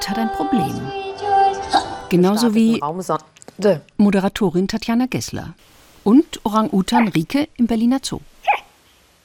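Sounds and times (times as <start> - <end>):
speech: 0.1 - 1.0, 2.1 - 8.3
hiccups: 8.4 - 8.8.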